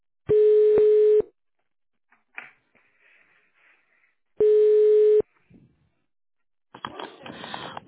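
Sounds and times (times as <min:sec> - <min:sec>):
ringback tone on a telephone line while a call is transferred to a secretary: 0:00.3 - 0:01.2, 0:04.4 - 0:05.2.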